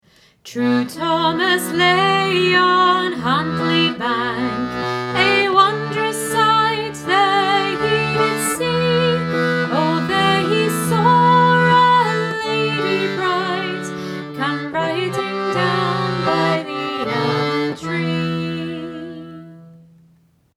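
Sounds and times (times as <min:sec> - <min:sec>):
normal chords played: 0:00.6 - 0:20.4.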